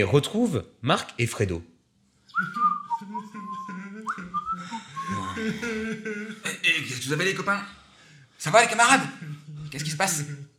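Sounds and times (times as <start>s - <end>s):
speech: 0.0s - 1.7s, 5.5s - 7.8s, 8.4s - 10.5s
person casually whistling a meandering tune: 2.3s - 5.4s
laughter: 2.4s - 7.1s.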